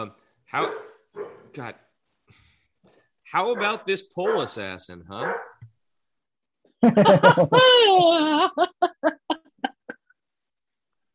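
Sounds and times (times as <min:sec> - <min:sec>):
speech: 0:00.0 - 0:00.9, 0:01.5 - 0:02.4, 0:03.3 - 0:05.5, 0:06.8 - 0:09.2
dog barking: 0:00.6 - 0:01.5, 0:03.5 - 0:04.6, 0:05.2 - 0:05.6
laughter: 0:06.8 - 0:09.9.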